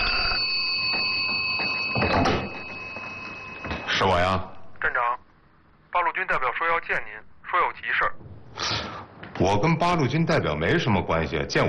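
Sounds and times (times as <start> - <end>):
telephone ringing with a trilling electronic tone: 0.0 - 4.2
speech: 4.0 - 5.2, 6.2 - 11.6.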